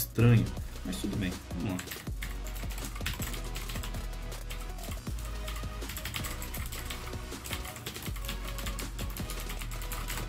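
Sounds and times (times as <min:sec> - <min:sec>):
speech: 0:00.2 - 0:02.2
rapid typing on a steeply inclined mechanical computer keyboard without numeric keypad: 0:01.7 - 0:10.2.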